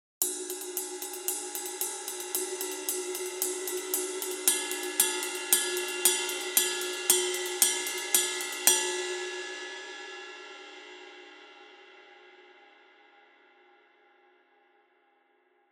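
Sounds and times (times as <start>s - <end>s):
resonant 20 inch extra heavy rock ride cymbal: 0.2s - 10.1s.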